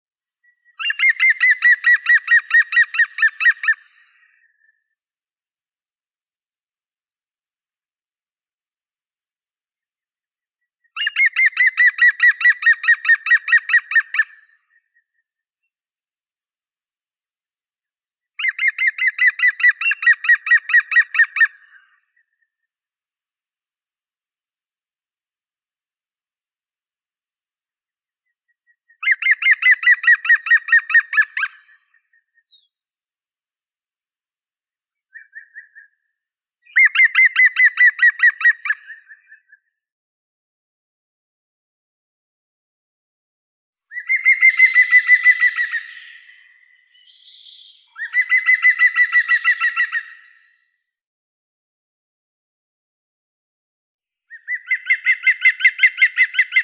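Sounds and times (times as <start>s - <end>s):
green woodpecker Picus viridis: 0.8s - 4.4s, 11.0s - 14.4s, 18.4s - 22.0s, 29.0s - 32.6s, 36.7s - 39.6s, 43.9s - 50.8s, 54.4s - 56.6s.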